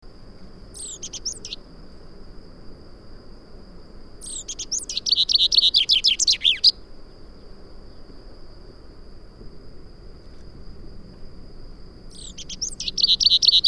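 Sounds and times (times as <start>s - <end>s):
common chaffinch Fringilla coelebs singing: 0.7s - 1.6s, 4.2s - 6.9s, 12.1s - 13.6s.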